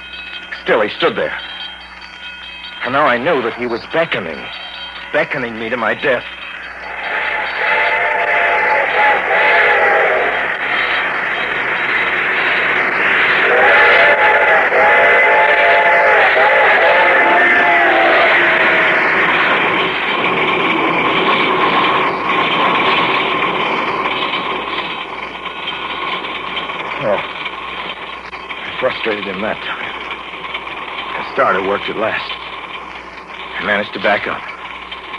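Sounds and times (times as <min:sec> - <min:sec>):
approaching train rumble: 0:00.0 - 0:35.1
speech: 0:00.7 - 0:01.5, 0:02.8 - 0:06.4, 0:29.2 - 0:29.8, 0:31.4 - 0:32.4, 0:33.6 - 0:34.5
harmonic train whistle blasts: 0:07.0 - 0:10.5, 0:13.4 - 0:18.9.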